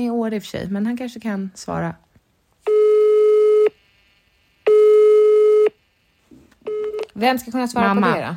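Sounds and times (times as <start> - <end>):
speech: 0.0 - 2.1, 7.2 - 8.3
telephone busy tone on a phone call: 2.7 - 3.8, 4.6 - 5.8, 6.7 - 7.1.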